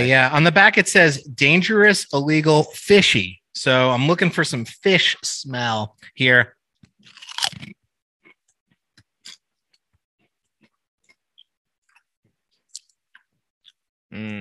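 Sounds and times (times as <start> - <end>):
speech: 0.0 - 6.6, 14.1 - 14.3
crunchy brittle snack being bitten and chewed: 7.0 - 7.8.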